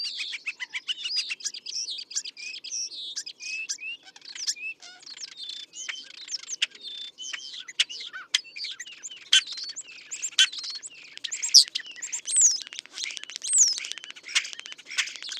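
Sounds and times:
European Starling calling: 0.2 - 15.3.

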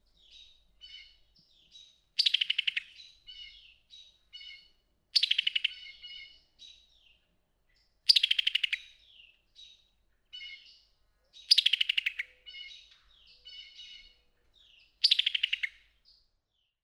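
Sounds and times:
summer tanager clicking calls: 2.2 - 3.6, 4.4 - 6.4, 8.1 - 9.0, 11.4 - 14.2, 15.0 - 15.8.

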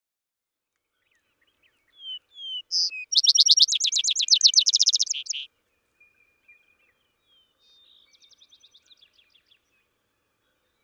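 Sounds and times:
Vesper sparrow song with slurred whistled notes and rapid trill: 1.0 - 9.7.

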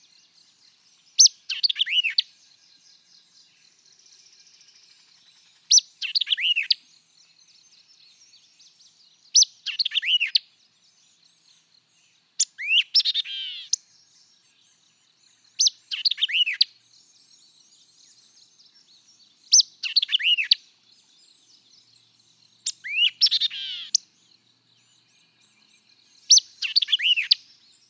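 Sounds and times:
white-eyed vireo song of sharp chips and slurred whistles: 1.1 - 2.3, 5.6 - 6.8, 9.3 - 10.4, 12.4 - 14.8, 15.5 - 24.1, 24.9 - 27.8.

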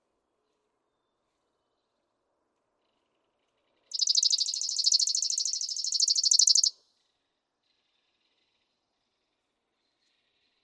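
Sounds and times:
Chipping Sparrow song trill of fast dry chips: 3.9 - 6.7.

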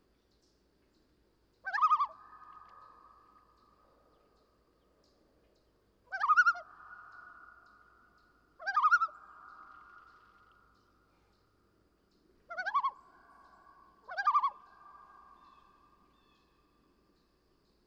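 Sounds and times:
common loon uttering quavering upslurred notes: 1.7 - 3.0, 6.1 - 7.1, 8.6 - 10.2, 12.5 - 13.0, 14.0 - 14.8.

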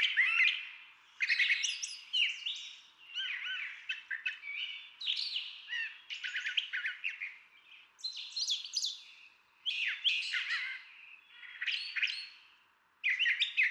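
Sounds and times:
brown thrasher song of chattering notes squawks and whistles: 0.0 - 13.7.

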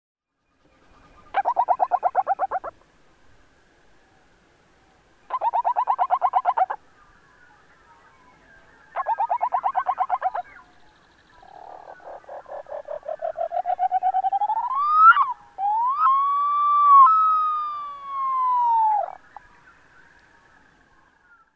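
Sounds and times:
Upland sandpiper giving rolling calls: 1.3 - 2.8, 5.3 - 6.8, 9.0 - 10.6, 11.5 - 19.2.

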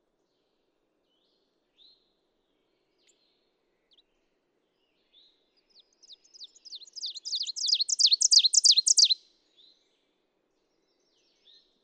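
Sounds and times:
Ovenbird singing high downward-swooping phrases: 7.3 - 9.2.

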